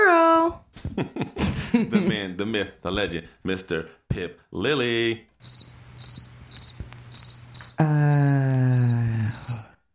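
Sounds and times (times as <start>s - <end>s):
speech: 1.9s - 6.3s, 7.8s - 9.9s
crickets chirping: 5.4s - 9.7s.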